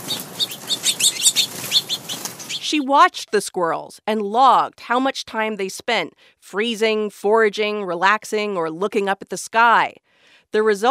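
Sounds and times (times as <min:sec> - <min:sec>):
songbirds chirping: 0:00.0 - 0:02.6
soft outdoor noise: 0:00.0 - 0:02.8
speech: 0:02.7 - 0:10.8.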